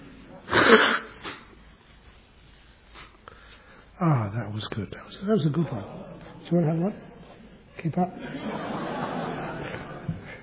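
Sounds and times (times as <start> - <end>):
person blowing nose: 0.5 - 1.6
speech: 0.7 - 1.0, 4.0 - 7.1, 7.8 - 8.7
laughter: 5.5 - 10.4.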